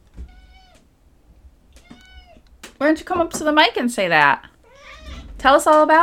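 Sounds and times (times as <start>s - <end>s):
cat meowing: 0.2s - 0.9s, 1.8s - 2.5s, 4.6s - 5.4s
speech: 2.8s - 4.5s, 5.4s - 6.0s.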